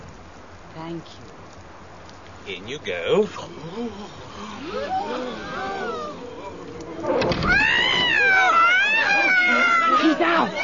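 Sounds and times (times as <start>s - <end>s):
speech: 2.7s - 5.8s
agitated cat up a tree yowling and wailing: 4.0s - 10.6s.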